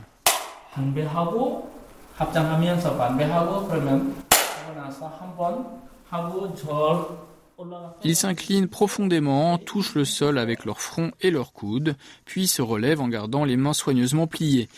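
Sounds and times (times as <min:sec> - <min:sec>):
monk striking a bamboo clapper stick: 0:00.2 - 0:00.6, 0:04.3 - 0:04.7
speech: 0:00.8 - 0:14.7.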